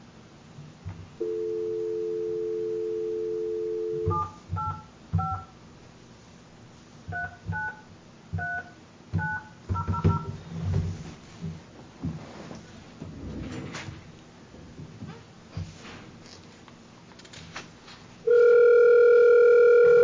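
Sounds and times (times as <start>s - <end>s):
telephone dial tone: 1.2s - 5.4s, 18.3s - 20.0s
telephone keypad two-tone dialing beeps: 4.0s - 5.5s, 7.1s - 7.8s, 8.4s - 10.3s.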